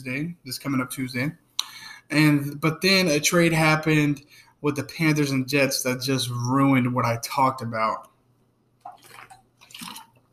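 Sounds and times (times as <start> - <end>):
speech: 0.0 - 8.1
slurping sips of water: 8.8 - 10.2.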